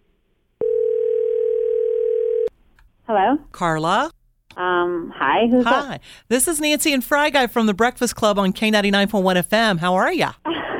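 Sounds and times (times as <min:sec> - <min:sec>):
telephone ringing tone on a call: 0:00.6 - 0:02.5
speech: 0:03.1 - 0:10.6.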